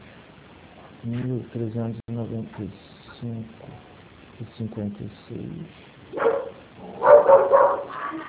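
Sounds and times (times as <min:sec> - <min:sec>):
speech: 0:01.0 - 0:06.3
dog barking: 0:06.1 - 0:08.2.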